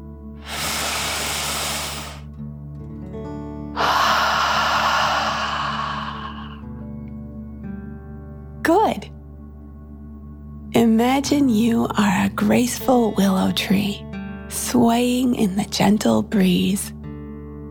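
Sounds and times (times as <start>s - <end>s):
deep relaxation breath in through the nose and out through the mouth: 0.4s - 2.2s, 3.8s - 6.7s
steady low music: 2.3s - 17.6s
speech: 10.8s - 14.0s, 14.7s - 17.0s.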